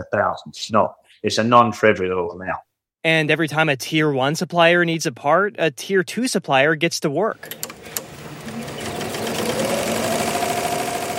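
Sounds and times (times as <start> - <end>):
speech: 0.0 - 8.0
industrial embroidery machine running in an aircraft seat cover factory: 7.5 - 11.1.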